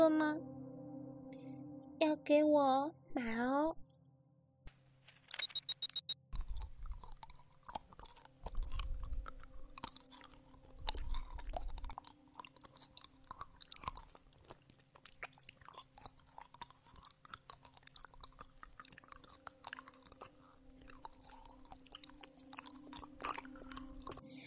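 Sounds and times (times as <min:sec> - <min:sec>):
speech: 0:02.0 - 0:03.9
person eating a lollipop: 0:06.3 - 0:24.4.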